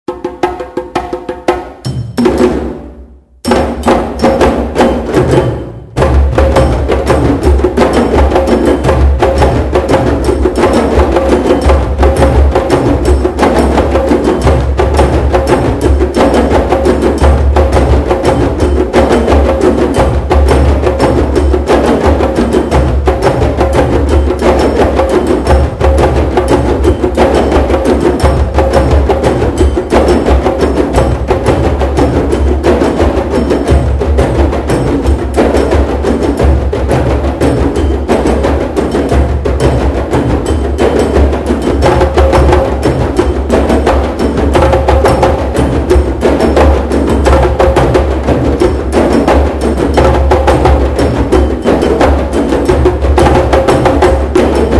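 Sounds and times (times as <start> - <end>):
rumba conga drumming: 0.1 - 54.7.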